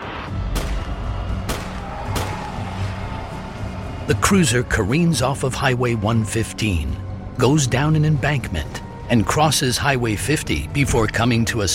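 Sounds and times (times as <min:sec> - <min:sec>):
9mm handgun shots: 0:00.6 - 0:02.5
speech: 0:04.1 - 0:11.7.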